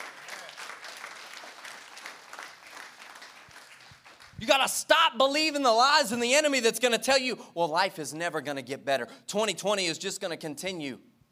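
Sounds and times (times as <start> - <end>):
audience clapping hands in sustained applause: 0.0 - 4.7
speech: 4.4 - 11.1.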